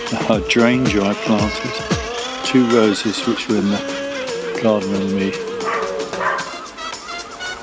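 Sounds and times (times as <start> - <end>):
speech: 0.3 - 4.0, 4.6 - 5.5
neighbour's dog barking in a garden: 5.6 - 6.7.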